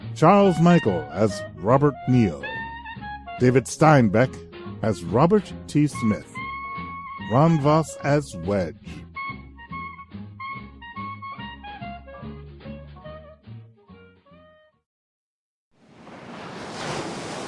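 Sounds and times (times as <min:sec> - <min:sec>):
music: 0:00.0 - 0:14.8
speech: 0:00.2 - 0:02.5, 0:03.4 - 0:06.3, 0:07.2 - 0:09.0
waves washing onto a deserted Gulf Coast beach: 0:16.0 - 0:17.4.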